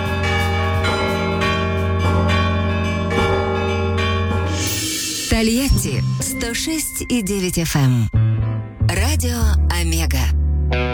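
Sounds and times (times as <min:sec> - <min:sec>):
bas-relief church bells ringing at a men's monastery at Ganina Yama: 0:00.0 - 0:08.0
speech: 0:05.4 - 0:08.2, 0:09.2 - 0:10.9.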